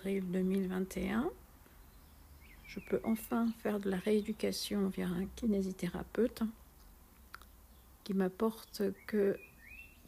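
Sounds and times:
speech: 0.0s - 1.4s, 2.7s - 6.6s, 8.0s - 9.5s
birds chirping outside: 0.1s - 5.8s, 6.7s - 10.0s.

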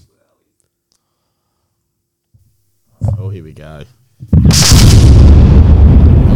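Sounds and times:
speech: 3.3s - 5.0s
cannon blast with low rumble: 4.3s - 6.3s.

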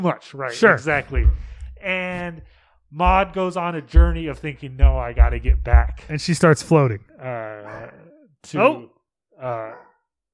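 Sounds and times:
speech: 0.0s - 9.9s
dog barking: 7.6s - 7.9s, 9.7s - 10.0s.

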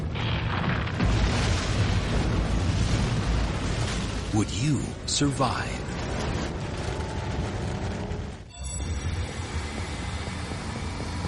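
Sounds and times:
volcanic hypereruption explosion at Yellowstone: 0.0s - 11.2s
speech: 4.4s - 5.9s.

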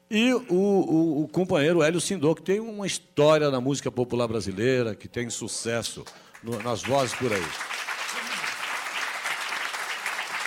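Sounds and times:
speech: 0.1s - 7.7s
studio audience applause: 6.3s - 10.4s.

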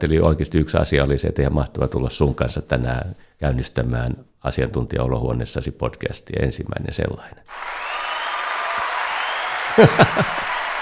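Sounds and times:
speech: 0.0s - 7.9s, 9.8s - 10.4s
many hands clapping in dense applause: 7.5s - 10.8s
laughter: 9.4s - 10.8s.

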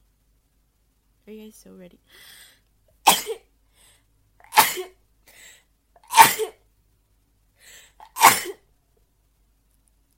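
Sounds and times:
speech: 1.3s - 2.6s
person sneezing sharply and explosively: 4.4s - 4.9s, 6.0s - 6.6s, 8.0s - 8.6s.

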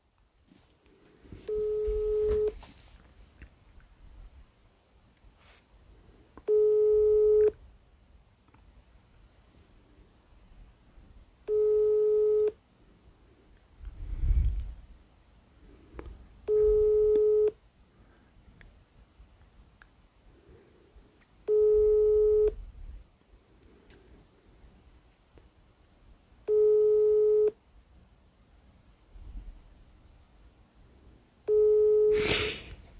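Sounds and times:
quiet noise: 0.0s - 32.9s
telephone ringback tone on an unanswered call: 1.4s - 2.6s, 6.5s - 7.6s, 11.5s - 12.6s, 16.5s - 17.6s, 21.5s - 22.6s, 26.5s - 27.6s, 31.5s - 32.2s.

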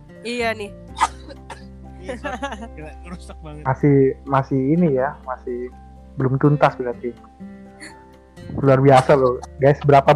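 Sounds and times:
speech: 0.2s - 1.4s, 2.0s - 8.0s, 8.6s - 10.1s
laughter: 2.0s - 3.4s, 8.6s - 10.0s
person coughing: 8.9s - 9.4s.

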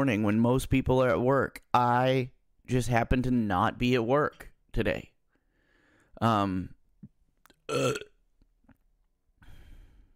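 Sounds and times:
speech: 0.0s - 5.1s, 6.2s - 6.8s, 7.7s - 8.1s
softer breathy exhale: 5.4s - 6.1s, 9.4s - 10.1s
loud deep burps: 7.7s - 8.2s.

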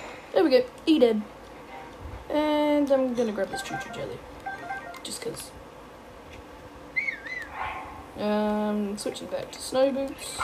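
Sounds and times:
low hum: 0.0s - 10.4s
speech: 0.4s - 1.4s, 2.3s - 4.3s, 5.0s - 5.6s, 8.2s - 10.4s
player character whistling in a video game: 7.0s - 7.5s.

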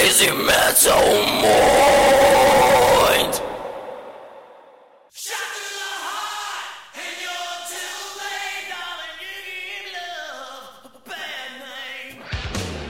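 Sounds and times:
speech: 0.2s - 1.9s
loud raw scream: 0.6s - 4.9s.

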